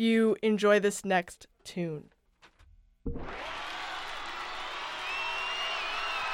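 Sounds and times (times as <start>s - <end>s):
speech: 0.0s - 2.1s, 3.0s - 3.6s
large concert crowd cheering at a live song: 3.1s - 6.3s
high whistles from a concert crowd: 3.3s - 6.3s
large concert crowd applause: 3.3s - 6.3s.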